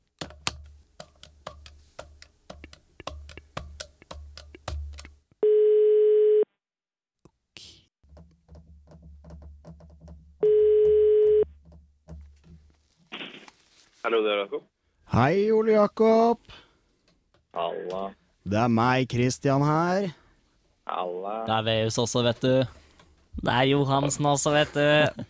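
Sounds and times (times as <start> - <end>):
rapid clicking while a call is placed on speakerphone: 0.1 - 5.2
long steady telephone beeps while a call is placed on speakerphone: 5.4 - 6.4, 10.4 - 11.4
speech: 14.1 - 16.6, 17.6 - 20.2, 21.0 - 22.8, 23.4 - 25.2.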